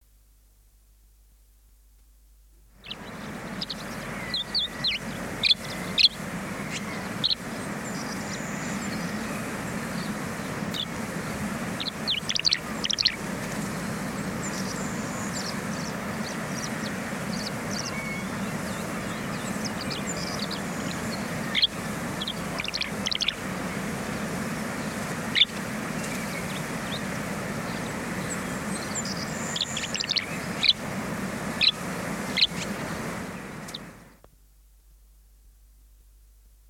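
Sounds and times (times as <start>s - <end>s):
songbirds singing: 2.7s - 34.3s
tree swallow calling: 2.8s - 34.2s.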